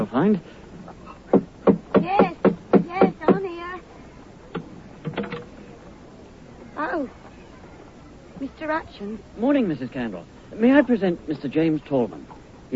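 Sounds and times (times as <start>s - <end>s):
speech: 0.0s - 0.6s, 8.7s - 12.7s
knocking on a front door: 1.3s - 3.4s.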